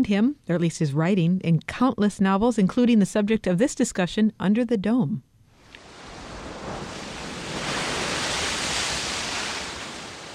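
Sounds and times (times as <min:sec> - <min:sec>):
speech: 0:00.0 - 0:05.3
Pacific Ocean waves rolling onto a beach: 0:05.6 - 0:10.3.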